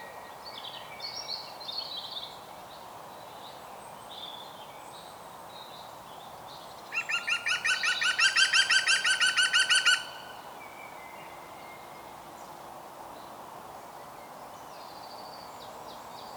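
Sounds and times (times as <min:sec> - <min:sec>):
European green woodpecker Picus viridis calling: 0:07.0 - 0:10.4.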